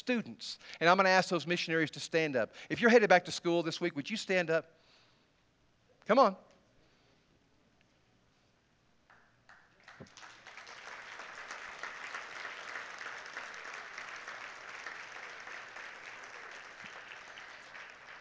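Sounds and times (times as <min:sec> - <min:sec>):
speech: 0:00.0 - 0:04.8, 0:06.1 - 0:06.5
large crowd applauding: 0:09.5 - 0:18.2.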